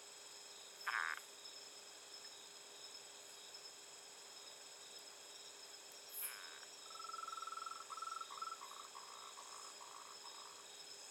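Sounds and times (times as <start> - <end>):
frog calling at night: 0.8 - 1.2, 6.2 - 10.6.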